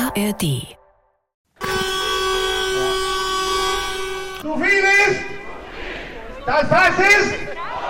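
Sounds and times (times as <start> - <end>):
speech: 0.2 - 0.8, 4.4 - 5.2, 6.5 - 7.7
tractor horns honking at a farmers' protest on motorway entrances: 1.6 - 4.8.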